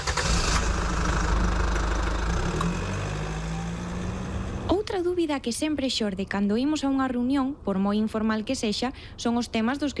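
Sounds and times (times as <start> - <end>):
car engine idling: 0.0 - 4.6
speech: 5.0 - 9.9.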